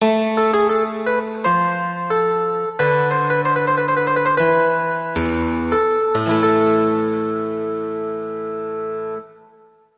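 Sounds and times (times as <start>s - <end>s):
harpsichord classical bridge: 0.0s - 9.2s.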